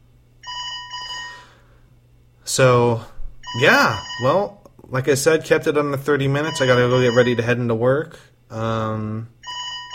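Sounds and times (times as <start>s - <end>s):
phone ringing with warbling electronic trills: 0.4s - 1.4s, 3.4s - 4.4s, 6.4s - 7.6s, 9.4s - 9.9s
speech: 2.5s - 9.4s.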